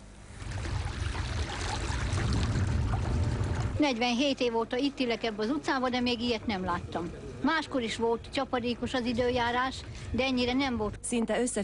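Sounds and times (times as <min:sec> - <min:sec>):
floodwater from overflowing stream pumped out in Hungary: 0:00.3 - 0:03.9
speech: 0:03.8 - 0:11.6.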